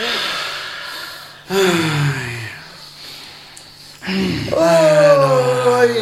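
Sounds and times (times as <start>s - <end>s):
several people breathing deeply: 0.0s - 4.6s
people gasping with sharp inhales: 0.0s - 5.9s
speech: 1.5s - 2.0s.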